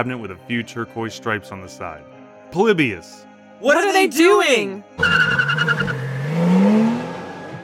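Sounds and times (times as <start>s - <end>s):
speech: 0.0s - 6.0s
tire squeal: 5.0s - 7.6s
unmarked van engine revving and accelerating: 5.0s - 7.6s.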